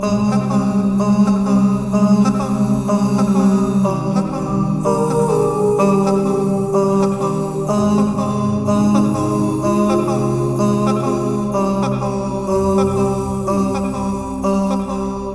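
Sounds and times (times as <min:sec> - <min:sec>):
rhythmic tenor vocal with reverb: 0:00.0 - 0:15.3.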